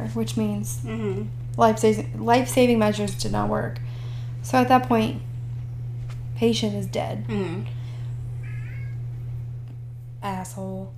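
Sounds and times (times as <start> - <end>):
steady low electrical hum: 0.0 - 10.9
speech: 0.1 - 5.3, 6.4 - 7.8, 10.2 - 10.9
cat meowing: 8.4 - 9.0.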